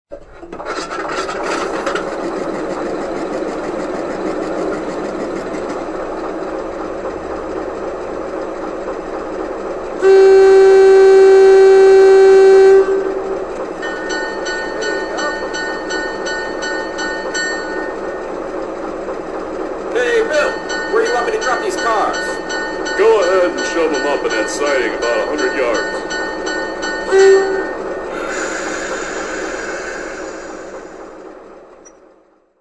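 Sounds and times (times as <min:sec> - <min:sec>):
GE 44Ton locomotive: 0:00.1 - 0:32.3.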